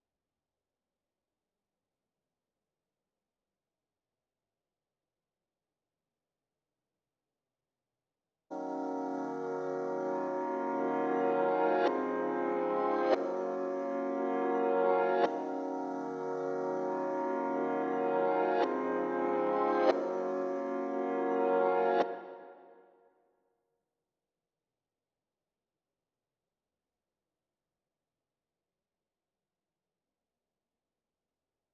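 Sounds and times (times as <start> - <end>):
reversed RnB piano melody in A-sharp minor at 142 BPM: 8.6 - 22.5.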